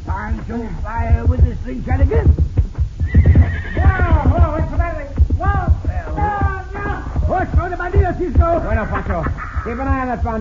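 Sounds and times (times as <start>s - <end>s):
horse hooves clip-clopping: 0.0s - 10.3s
speech: 0.5s - 2.5s, 8.2s - 10.3s
horse neighing with shrill wavering whinnies: 3.0s - 4.3s
laughter: 8.5s - 10.3s.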